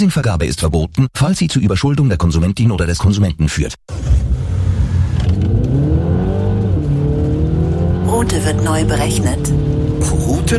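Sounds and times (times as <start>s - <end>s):
speech: 0.0s - 4.4s, 8.2s - 10.5s
Audi Q4 e-tron electric car driving off: 3.9s - 10.5s.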